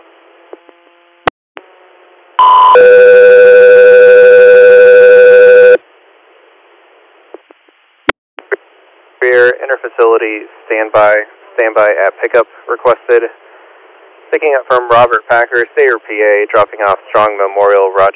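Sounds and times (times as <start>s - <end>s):
dispatch alert tones for an air medical crew: 2.4s - 5.8s
faint radio hiss: 5.8s - 18.1s
speech: 10.2s - 13.4s, 14.3s - 18.1s.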